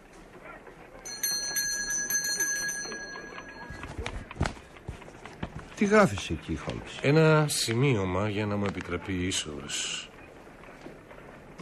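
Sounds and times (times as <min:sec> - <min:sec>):
doorbell ringing: 0:01.1 - 0:04.1
shuffling noises: 0:03.2 - 0:07.2
speech: 0:05.8 - 0:10.1.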